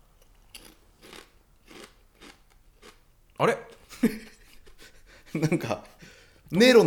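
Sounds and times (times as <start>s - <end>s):
habanero-flavoured Tongari Corn corn snack crunching: 0.3s - 3.0s
speech: 3.4s - 4.3s, 5.4s - 5.9s, 6.5s - 6.8s.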